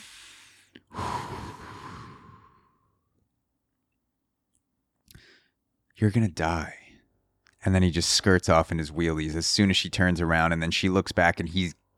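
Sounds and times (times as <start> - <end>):
person imitating heavy creepy breathing: 0.0 - 2.8
speech: 6.0 - 6.8, 7.6 - 11.8.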